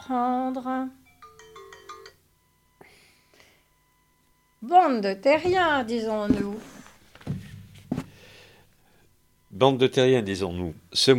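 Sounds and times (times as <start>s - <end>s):
speech: 0.1s - 1.0s, 4.6s - 6.7s, 9.6s - 11.1s
mobile phone ringtone of bright electronic notes: 1.0s - 3.2s.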